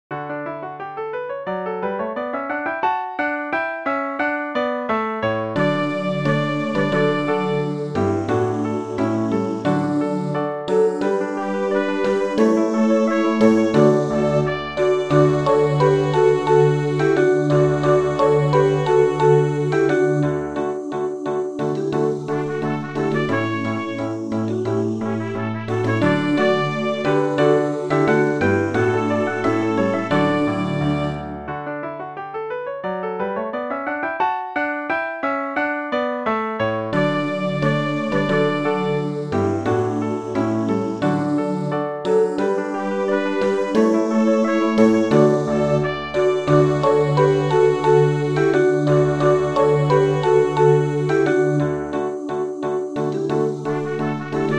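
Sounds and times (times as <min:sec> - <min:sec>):
piano: 0:00.1 - 0:54.5
trumpet: 0:05.6 - 0:20.2, 0:22.0 - 0:31.5, 0:36.9 - 0:51.6, 0:53.6 - 0:54.5.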